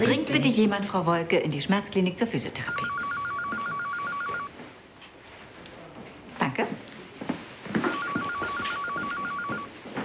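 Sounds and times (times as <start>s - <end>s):
speech: 0.0s - 3.0s
phone ringing with a two-tone electronic trill: 2.6s - 4.5s, 7.9s - 9.7s.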